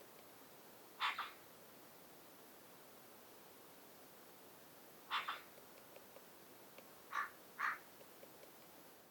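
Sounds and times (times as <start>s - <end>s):
Eurasian magpie Pica pica calling: 1.0s - 1.4s, 5.1s - 5.5s, 7.1s - 7.9s.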